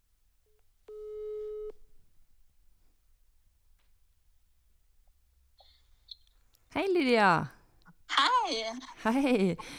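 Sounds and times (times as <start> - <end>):
telephone ringback tone while a call is being placed: 0.9 - 1.7
speech: 6.8 - 9.7.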